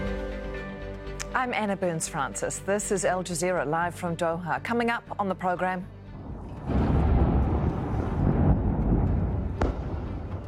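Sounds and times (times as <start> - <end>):
speech: 1.4 - 6.0
explosions in southern Lebanon: 6.2 - 10.4.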